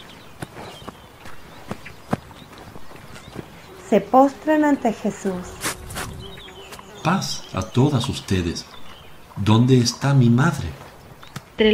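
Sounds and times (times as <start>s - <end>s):
quick scuffing footsteps of women hurrying downhill: 0.0s - 3.7s, 5.6s - 6.9s
speech: 3.9s - 5.6s, 7.0s - 8.8s, 9.4s - 10.8s, 11.6s - 11.7s.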